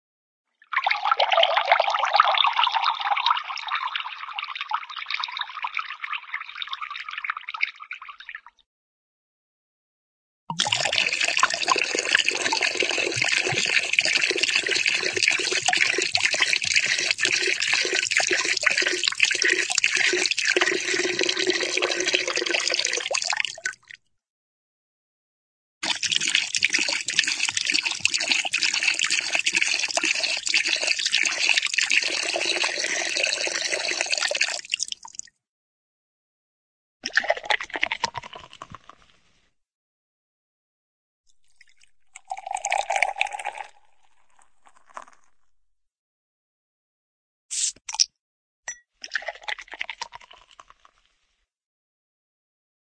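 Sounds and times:
cartoon water pouring into a cup: 0.8s - 7.2s, 10.5s - 24.0s, 25.8s - 35.3s, 37.0s - 38.9s, 41.4s - 45.5s, 49.0s - 51.0s.

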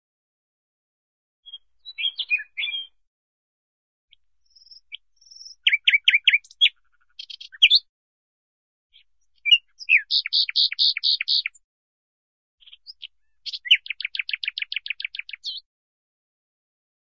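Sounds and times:
cartoon hawk chirping: 1.5s - 2.9s, 5.3s - 7.8s, 9.4s - 11.6s, 12.6s - 15.6s.

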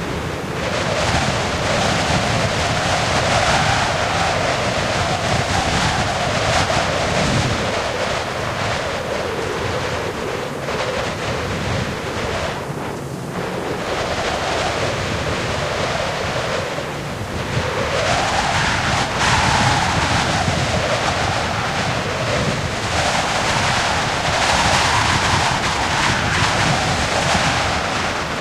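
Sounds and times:
heavy wind for video games: 0.0s - 28.4s.

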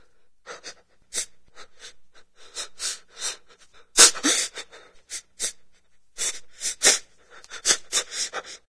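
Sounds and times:
person crying: 3.5s - 5.6s, 6.2s - 8.7s.

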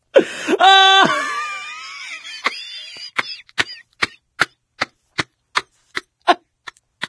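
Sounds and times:
person laughing: 0.6s - 4.2s, 6.2s - 7.0s.

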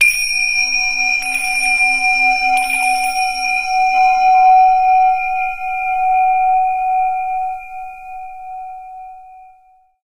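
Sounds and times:
zen tingsha cymbals ringing: 0.0s - 7.6s.

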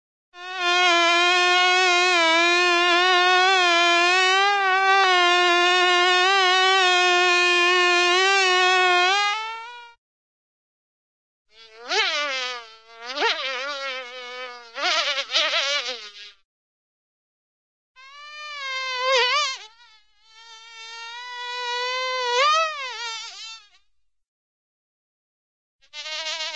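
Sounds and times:
single fly buzzing, cartoon style: 0.4s - 10.0s, 11.5s - 16.4s, 18.0s - 23.8s, 25.8s - 26.5s.

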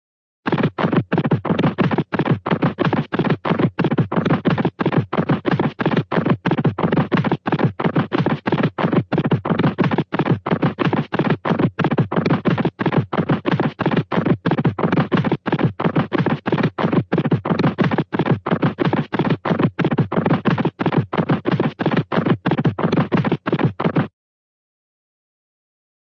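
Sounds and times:
cartoon horse gallop thuds: 0.5s - 24.1s.

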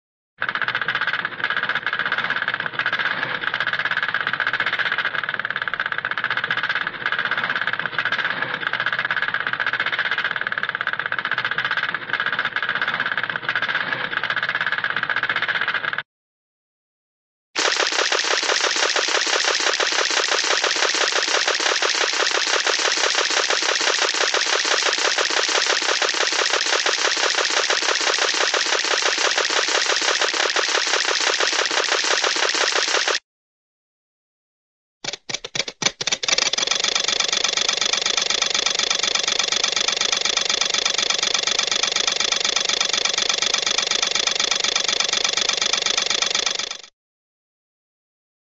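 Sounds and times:
motor of a cartoon tiny assembly line: 0.4s - 16.0s, 17.6s - 33.2s, 35.0s - 46.9s.

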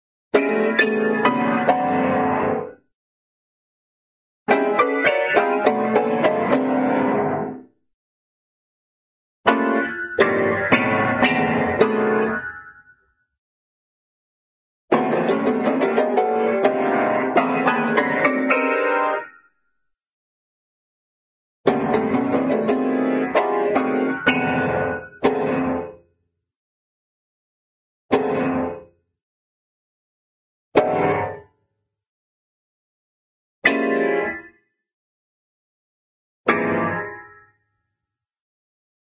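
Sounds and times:
wild cartoon piano music: 0.3s - 2.9s, 4.5s - 7.8s, 9.5s - 13.2s, 14.9s - 19.6s, 21.6s - 26.0s, 28.1s - 28.8s, 30.8s - 31.5s, 33.6s - 34.6s, 36.5s - 37.4s.

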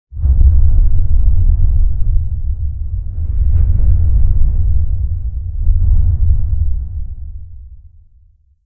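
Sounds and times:
random rumble: 0.0s - 8.6s.

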